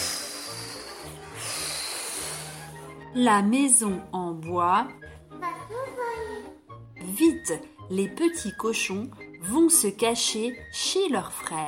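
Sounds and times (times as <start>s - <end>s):
forceful breathy blowing as a wolf blows on a wooden house: 0.0s - 3.1s
speech: 3.1s - 5.8s, 7.1s - 11.6s.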